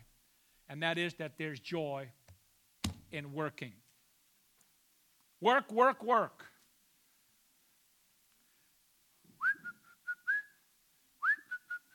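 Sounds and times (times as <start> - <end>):
speech: 0.7 - 2.2, 3.1 - 3.8, 5.4 - 6.5
person whistling a short tune: 9.4 - 10.6, 11.2 - 11.9.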